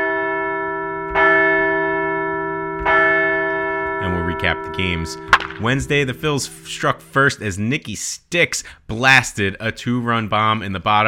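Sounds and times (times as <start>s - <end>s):
large bell struck and ringing: 0.0s - 7.5s
speech: 4.4s - 11.0s.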